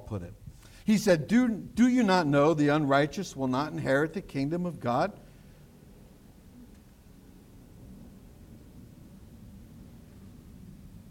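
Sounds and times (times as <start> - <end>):
faint hiss of rain or wind: 0.0 - 11.1
speech: 0.1 - 5.2
thunder rumbling from a storm with lightning: 5.7 - 11.1.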